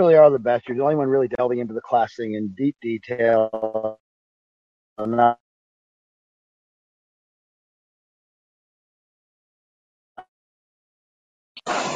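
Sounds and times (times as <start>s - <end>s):
speech: 0.0s - 4.0s, 5.0s - 5.4s
clipped voice fragment in breaking-up call audio: 0.7s - 4.0s, 5.0s - 5.4s
burst of harsh noise: 11.6s - 11.9s.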